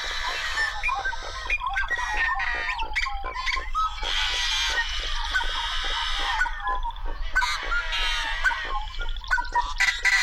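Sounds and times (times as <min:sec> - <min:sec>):
harsh buzzy calls of yellow-headed blackbirds in a cattail marsh: 0:00.0 - 0:10.2.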